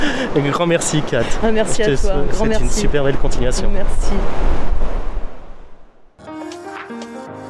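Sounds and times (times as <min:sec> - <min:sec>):
loud wave rushing onto the beach of Kervel at Plonévez-Porzay: 0:00.0 - 0:05.8
speech: 0:00.2 - 0:04.8
music: 0:06.2 - 0:07.4.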